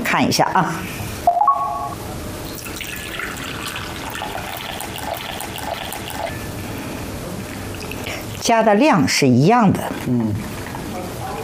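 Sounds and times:
speech: 0:00.1 - 0:01.0, 0:08.4 - 0:10.5
warm water about 50 degrees poured into a container: 0:02.5 - 0:06.2.

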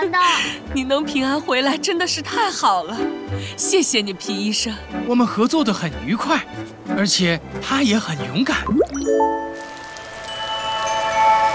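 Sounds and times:
speech: 0:00.2 - 0:09.5
sustained tinkling musical tones: 0:08.7 - 0:11.5
steady rain falling in the desert: 0:09.0 - 0:11.5.

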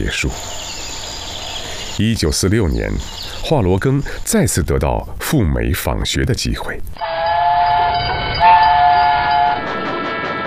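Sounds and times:
speech: 0:00.0 - 0:00.6, 0:02.0 - 0:07.1
sustained high metallic tone: 0:07.0 - 0:10.4
train rumbling along the rails: 0:07.0 - 0:10.4.

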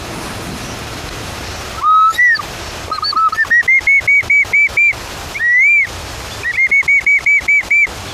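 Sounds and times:
bamboo instrument imitating a bird call: 0:01.8 - 0:08.0.

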